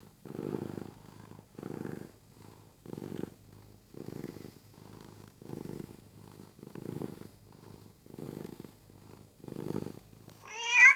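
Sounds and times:
cat purring: 0.0 - 10.9
cat meowing: 10.4 - 10.9.

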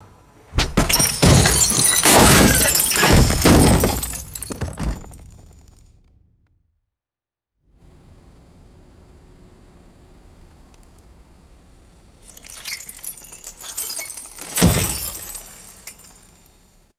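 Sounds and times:
heavy impacts shattering safety glass: 0.6 - 5.8, 12.3 - 16.6.

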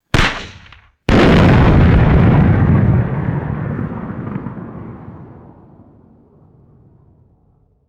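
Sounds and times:
loud outdoor cannon explosion with long decay: 0.1 - 5.7.

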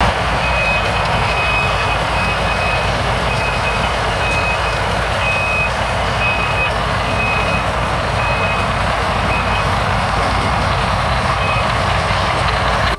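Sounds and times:
fire truck idling: 0.0 - 12.9
fire truck cautionary beeps: 0.4 - 9.8.

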